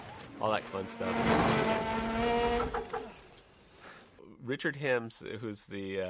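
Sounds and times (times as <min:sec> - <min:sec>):
motorcycle engine whining in a film chase sequence: 0:00.0 - 0:03.4
speech: 0:00.4 - 0:02.9, 0:04.5 - 0:06.0
motorcycle tire skids and squeals: 0:01.0 - 0:03.4.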